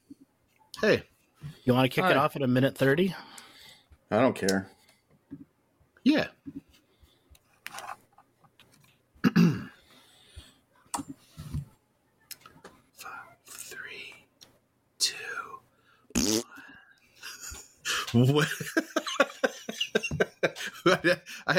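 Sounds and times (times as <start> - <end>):
speech: 0.8 - 3.4, 4.1 - 4.8, 6.0 - 6.6, 18.2 - 19.0, 20.8 - 21.5
buzzy fart noise made with the mouth: 16.1 - 16.5
laughter: 17.2 - 21.5.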